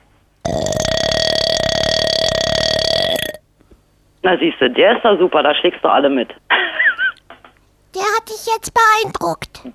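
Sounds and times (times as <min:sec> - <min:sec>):
long loud burp after drinking soda: 0:00.5 - 0:03.4
quieter gulping or mouth noises: 0:00.5 - 0:03.4
speech: 0:04.3 - 0:06.4, 0:08.3 - 0:09.7.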